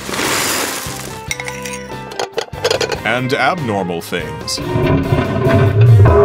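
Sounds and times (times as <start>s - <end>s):
ceramic bowls clinking and scraping against each other: 1.2s - 3.4s
speech: 3.0s - 6.2s.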